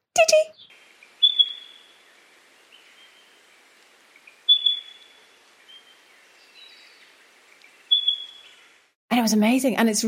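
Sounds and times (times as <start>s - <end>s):
speech: 0.2s - 0.6s, 9.2s - 10.0s
spotted pardalote piping call: 0.5s - 3.5s, 4.2s - 8.8s.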